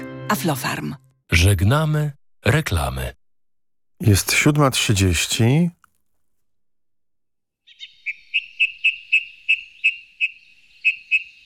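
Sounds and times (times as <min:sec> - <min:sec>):
speech: 0:00.3 - 0:03.2, 0:04.0 - 0:05.8
bird song of clear high-pitched whistled notes: 0:07.6 - 0:11.4.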